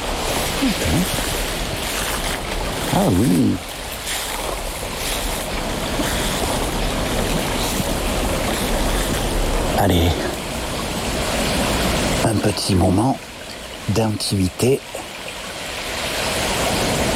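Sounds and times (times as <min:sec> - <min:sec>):
small stream flowing: 0:00.0 - 0:17.1
speech: 0:00.6 - 0:01.3, 0:03.0 - 0:03.7, 0:09.8 - 0:10.2, 0:12.6 - 0:13.3, 0:13.9 - 0:14.9
person exclaiming: 0:03.0 - 0:03.6.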